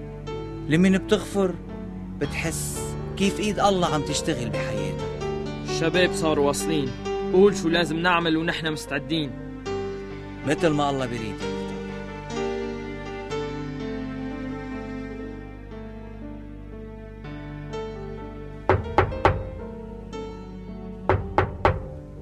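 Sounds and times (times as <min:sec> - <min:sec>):
soft steady music: 0:00.0 - 0:22.2
speech: 0:00.7 - 0:05.0, 0:05.8 - 0:09.4, 0:10.4 - 0:11.6
sharp loud knocks on a door: 0:18.7 - 0:19.6, 0:21.1 - 0:22.0.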